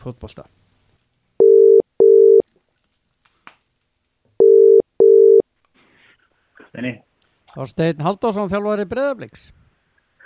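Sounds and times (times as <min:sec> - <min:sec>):
speech: 0:00.0 - 0:00.6, 0:06.8 - 0:09.6
ringing tone of an outgoing telephone call: 0:01.4 - 0:02.4, 0:04.4 - 0:05.4.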